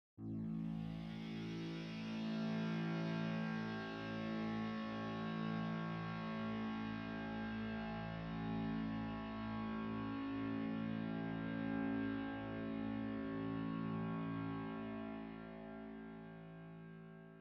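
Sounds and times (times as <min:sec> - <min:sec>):
big synth sitar pad: 0:00.2 - 0:17.3.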